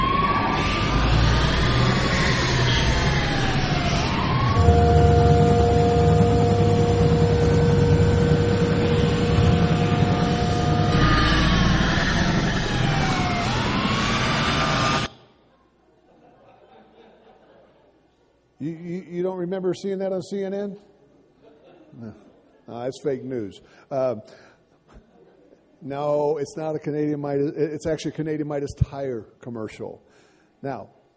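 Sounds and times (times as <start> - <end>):
loud continuous car engine roar in a car chase: 0.0 - 15.1
police siren wailing in a car chase: 0.0 - 15.1
steady droning tone: 0.0 - 15.1
laughter: 15.9 - 18.0, 21.4 - 22.6
speech: 19.6 - 20.9, 22.0 - 24.5, 25.8 - 30.0, 30.6 - 31.1.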